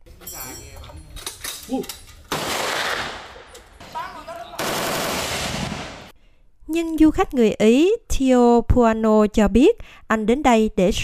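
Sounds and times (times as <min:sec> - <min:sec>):
speech: 0:01.7 - 0:02.0, 0:06.8 - 0:11.0
automatic weapon gunfire at a shooting range: 0:02.3 - 0:03.4, 0:04.5 - 0:06.1.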